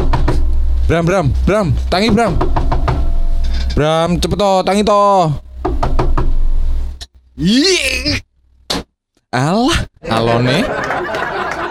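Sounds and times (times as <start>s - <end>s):
knocking on a door: 0.0s - 0.5s, 2.0s - 3.2s, 5.6s - 6.4s
low steady rumble: 0.0s - 8.7s
speech: 0.9s - 2.7s, 3.8s - 5.9s, 7.4s - 8.3s, 9.3s - 10.7s
laughter: 10.4s - 11.6s.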